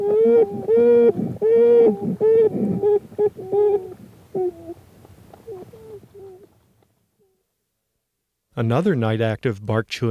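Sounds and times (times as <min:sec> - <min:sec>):
young American beavers moaning inside the den: 0:00.0 - 0:06.6
speech: 0:08.6 - 0:10.0.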